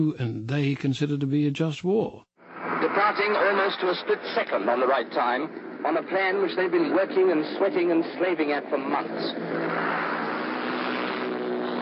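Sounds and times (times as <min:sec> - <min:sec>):
speech: 0:00.0 - 0:09.9
paratroop plane engines droning while circling the aerodrome: 0:02.4 - 0:11.8.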